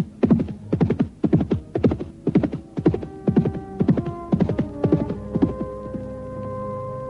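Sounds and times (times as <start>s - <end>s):
horse hoofbeats as a rider gallops home: 0.0s - 7.0s.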